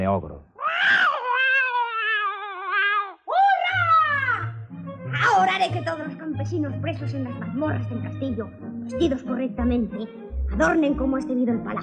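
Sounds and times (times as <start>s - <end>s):
speech: 0.0s - 1.0s, 5.4s - 11.8s
low rumbling cat growl: 0.6s - 3.2s
cat yowling as it pounces on a mouse: 0.6s - 4.4s.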